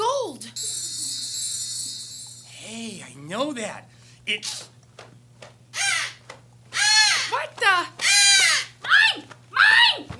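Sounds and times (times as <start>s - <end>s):
low steady hum: 0.0s - 10.1s
speech: 3.3s - 4.7s
crow cawing: 8.0s - 8.8s.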